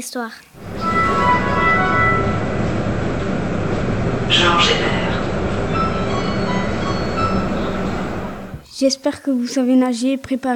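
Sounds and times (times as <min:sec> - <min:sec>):
speech: 0:00.0 - 0:01.8, 0:04.3 - 0:05.0, 0:08.8 - 0:10.5
thin metallic whine of a tram: 0:00.6 - 0:08.6
tram rumbling past: 0:00.6 - 0:08.6.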